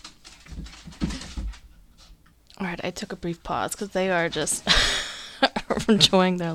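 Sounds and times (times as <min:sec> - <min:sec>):
soft patter: 0:00.0 - 0:04.7
excited dogs scuffling: 0:00.0 - 0:04.8
speech: 0:02.6 - 0:05.0, 0:05.7 - 0:06.5.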